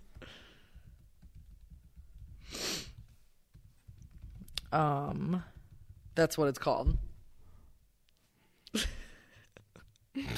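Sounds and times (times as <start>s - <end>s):
typing on a computer keyboard: 0.8s - 2.4s, 3.0s - 4.8s, 5.4s - 6.2s
speech: 4.7s - 5.6s, 6.2s - 7.0s
breathy snort: 10.2s - 10.3s.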